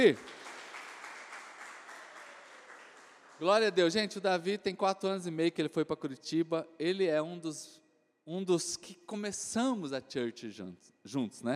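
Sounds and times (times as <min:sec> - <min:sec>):
speech: 0:00.0 - 0:00.3, 0:03.4 - 0:11.5
crowd applauding: 0:00.0 - 0:04.0.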